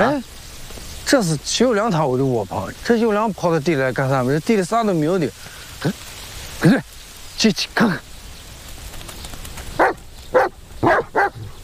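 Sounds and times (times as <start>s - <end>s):
speech: 0.0s - 0.4s, 1.1s - 6.0s, 6.6s - 8.1s
faint outdoor hiss: 0.0s - 11.6s
dog barking: 9.8s - 11.6s.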